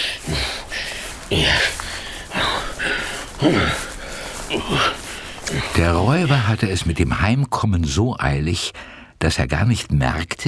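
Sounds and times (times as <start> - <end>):
man imitating heavy puffing and snorting while hauling a chest: 0.0 - 6.7
speech: 3.4 - 3.8, 5.8 - 10.4.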